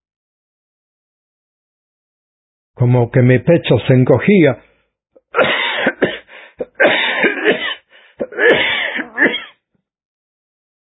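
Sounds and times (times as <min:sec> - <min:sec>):
speech: 0:02.8 - 0:04.7
loud harsh wet coughing fit from a person who has choked: 0:05.3 - 0:09.6
person gasping between coughs: 0:06.1 - 0:09.2.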